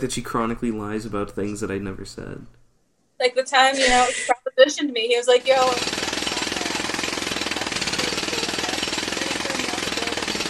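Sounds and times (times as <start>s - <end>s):
speech: 0.0s - 2.6s, 3.2s - 6.1s
jackhammer pounding: 5.3s - 10.4s.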